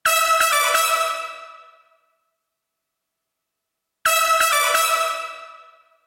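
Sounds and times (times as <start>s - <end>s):
brass instruments in a NY City loft: 0.0s - 1.7s, 4.0s - 5.8s.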